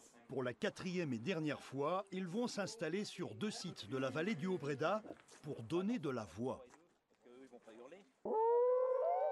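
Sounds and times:
speech: 0.3 - 6.8
person imitating wolf howl: 8.3 - 9.3.

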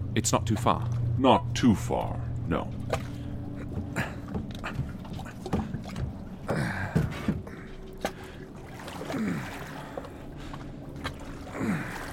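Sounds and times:
small boat hull creaking and knocking: 0.0 - 9.2
speech: 0.2 - 3.0
water splashing as a small boat is paddled by hand: 0.2 - 12.1.

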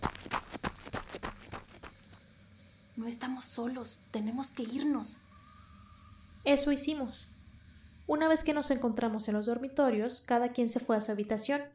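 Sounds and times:
footsteps crunching twigs and branches on brittle ground: 0.0 - 2.2
speech: 3.0 - 5.2, 6.4 - 7.3, 8.1 - 11.7.

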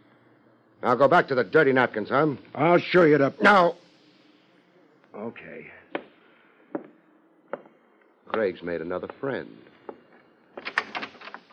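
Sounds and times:
speech: 0.8 - 3.8, 5.2 - 5.8, 8.3 - 9.7
door opening as someone enters: 10.5 - 11.5.

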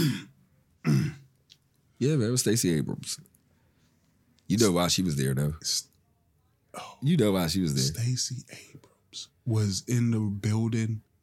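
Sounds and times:
person clearing throat gruffly: 0.0 - 1.3
speech: 2.0 - 3.4, 4.5 - 5.9, 6.8 - 11.1.

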